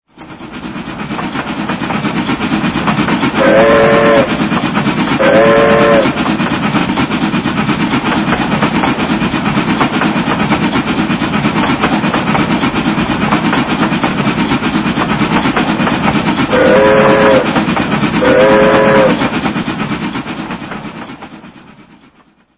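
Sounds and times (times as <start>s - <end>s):
train: 0.0s - 22.5s.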